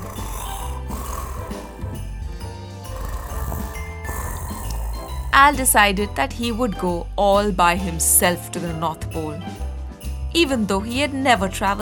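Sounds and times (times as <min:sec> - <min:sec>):
loud rumbling snoring: 0:00.0 - 0:05.7
busy music: 0:00.0 - 0:11.8
speech: 0:05.4 - 0:09.6, 0:10.3 - 0:11.8.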